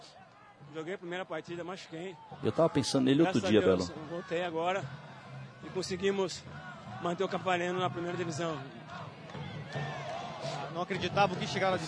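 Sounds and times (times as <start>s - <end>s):
speech: 0.7s - 5.1s, 5.7s - 9.0s, 9.7s - 10.0s, 10.8s - 11.8s
football fans chanting in a big stadium: 3.4s - 11.8s.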